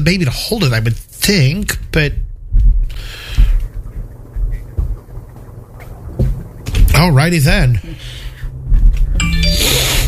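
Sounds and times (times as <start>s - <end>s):
speech: 0.0s - 2.2s, 7.0s - 8.2s
low rumble: 1.6s - 10.0s
phone notification chime: 9.2s - 10.0s.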